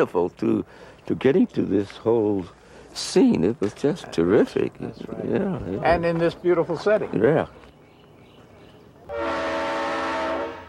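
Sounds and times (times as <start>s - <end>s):
speech: 0.0s - 7.7s
train horn blast: 9.1s - 10.6s.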